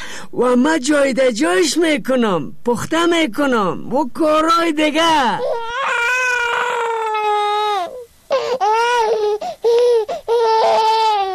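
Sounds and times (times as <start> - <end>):
speech: 0.3 - 5.6
baby crying after waking up: 5.3 - 11.3.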